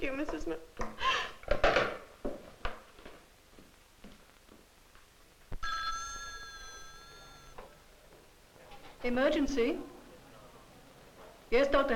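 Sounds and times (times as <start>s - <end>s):
speech: 0.0s - 1.1s, 9.1s - 9.9s, 11.5s - 11.9s
telephone bell ringing: 5.6s - 7.7s.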